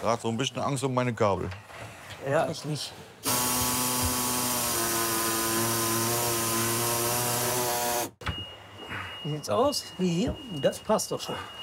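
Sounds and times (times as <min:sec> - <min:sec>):
speech: 0:00.0 - 0:03.1, 0:09.2 - 0:11.6
power saw cutting sheet metal for a cabinet: 0:03.2 - 0:08.2.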